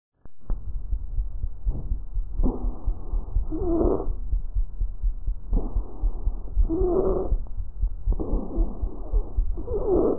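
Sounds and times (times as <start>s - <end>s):
adult stridor breathing: 1.6s - 10.1s.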